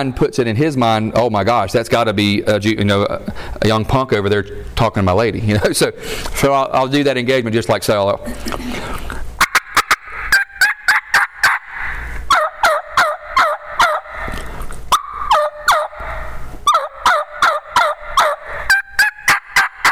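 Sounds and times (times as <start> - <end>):
speech: 0.0 - 9.1
hand turkey call imitating hen yelps: 9.4 - 19.9.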